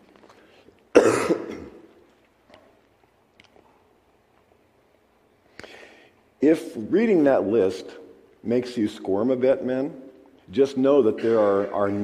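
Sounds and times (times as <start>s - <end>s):
throat clearing: 0.9s - 1.8s, 11.2s - 11.9s
person coughing: 0.9s - 1.9s, 11.1s - 12.0s
speech: 6.4s - 12.0s.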